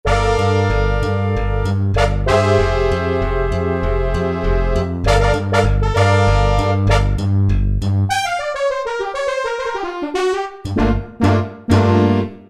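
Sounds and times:
Roland D-50 synthesizer slap brass preset: 0:00.1 - 0:12.4.

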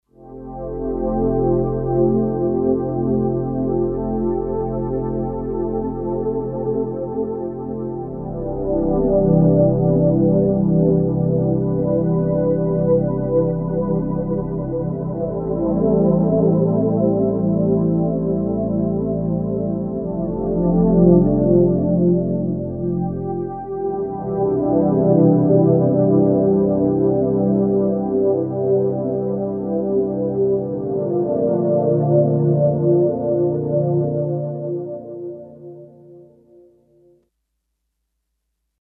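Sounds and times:
Kawai K5000S synthesizer pad: 0:00.2 - 0:36.8.

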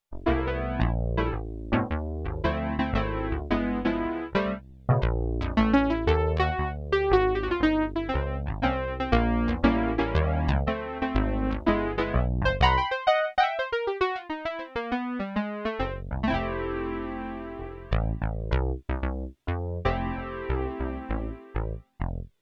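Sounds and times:
SIEL DK 80 bass: 0:00.0 - 0:13.0, 0:15.8 - 0:22.4
SIEL DK 80 piano: 0:00.1 - 0:18.5.

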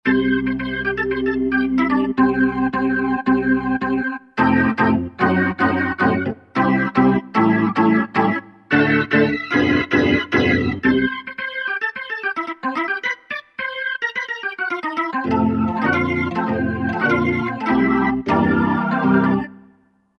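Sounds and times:
organ patch on a synthesizer module: 0:00.0 - 0:19.8.

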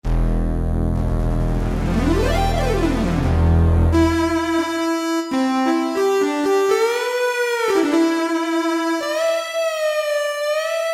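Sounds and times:
synthesizer sync sound from factory preset: 0:00.0 - 0:10.8.

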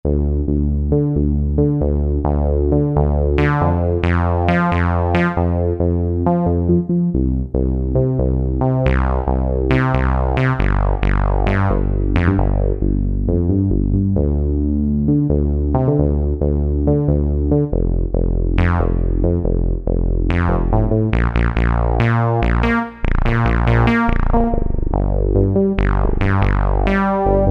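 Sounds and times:
rubber bass synthesizer sound: 0:00.0 - 0:27.4.

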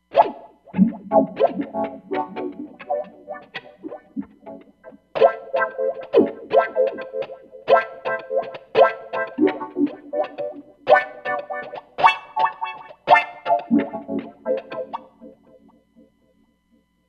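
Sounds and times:
dub guitar on a synthesizer: 0:00.0 - 0:16.1.

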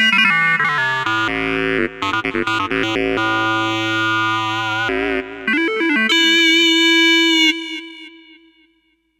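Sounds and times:
synthesizer tone: 0:00.1 - 0:07.3.

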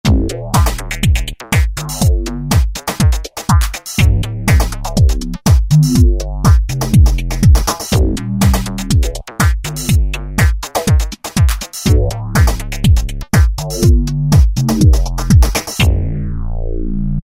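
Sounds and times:
phased house beat from Korg ES-1 factory patterns: 0:00.0 - 0:16.0.

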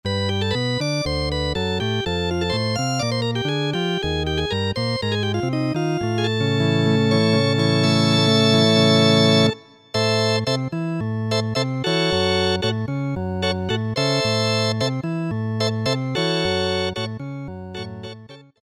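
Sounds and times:
synthesizer organ preset: 0:00.2 - 0:18.6.

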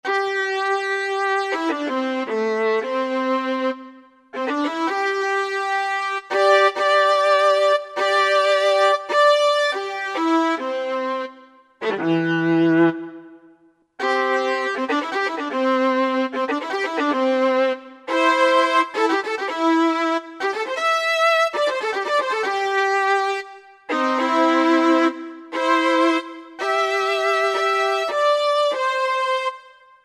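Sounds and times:
fiddle duo playing country music: 0:00.1 - 0:13.2, 0:14.0 - 0:29.6.

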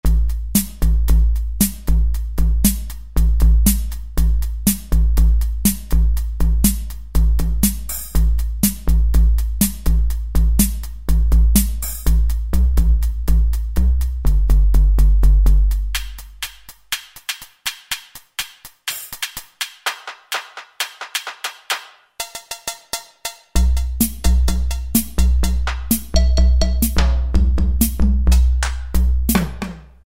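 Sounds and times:
beatbox on a Kurzweil K2000: 0:00.0 - 0:30.0.

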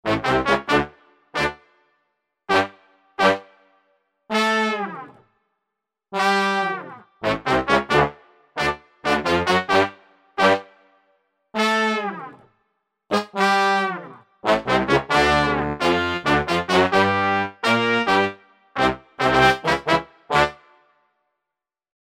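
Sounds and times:
horn section: 0:00.1 - 0:01.6, 0:02.5 - 0:03.5, 0:04.3 - 0:05.2, 0:06.2 - 0:10.7, 0:11.6 - 0:12.4, 0:13.1 - 0:20.7.

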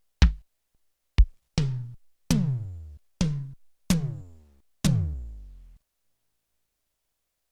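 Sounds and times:
Yamaha TX16W snare drum hit: 0:00.2 - 0:00.4, 0:01.2 - 0:05.8.

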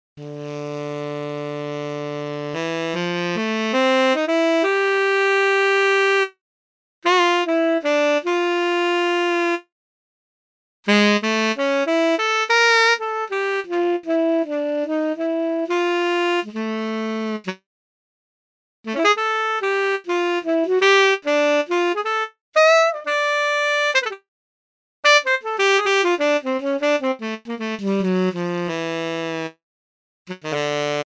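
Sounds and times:
synthesized tenor saxophone: 0:00.2 - 0:06.4, 0:07.0 - 0:09.7, 0:10.9 - 0:17.6, 0:18.9 - 0:24.3, 0:25.0 - 0:29.6, 0:30.3 - 0:31.0.

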